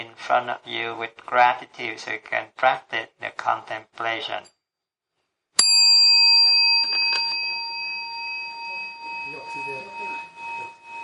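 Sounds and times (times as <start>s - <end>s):
speech: 0.2s - 4.6s, 9.3s - 10.0s
bell struck and ringing with a bright sustained tone: 5.6s - 11.0s.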